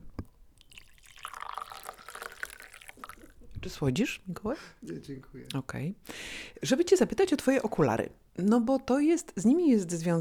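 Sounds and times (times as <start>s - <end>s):
coffee pouring into a cup: 0.6s - 3.6s
speech: 3.6s - 10.1s.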